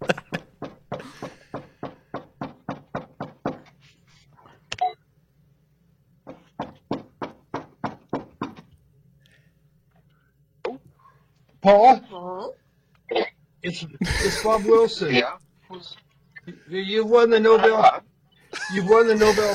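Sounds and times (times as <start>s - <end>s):
laughter: 0.0s - 1.4s, 14.0s - 14.9s, 18.5s - 19.5s
rapid knocking on a door: 0.0s - 3.7s, 6.2s - 8.7s
speech: 11.6s - 12.6s, 13.6s - 15.4s, 16.7s - 18.0s, 18.7s - 19.5s.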